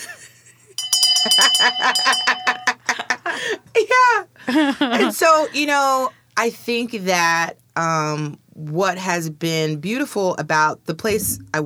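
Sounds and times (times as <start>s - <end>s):
bursts of laughter: 0.0s - 3.6s, 4.4s - 5.5s
bright bell rung for shame: 0.8s - 3.0s
speech: 1.2s - 2.2s, 4.5s - 11.6s.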